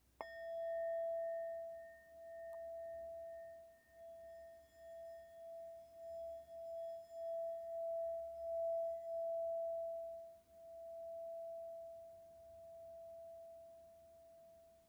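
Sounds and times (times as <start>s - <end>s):
Tibetan singing bowl: 0.0s - 14.8s.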